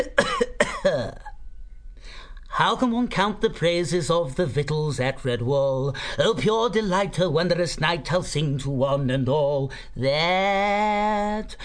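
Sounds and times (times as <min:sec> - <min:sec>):
man giving a polite cough: 0:00.0 - 0:01.4
speech: 0:02.6 - 0:11.6.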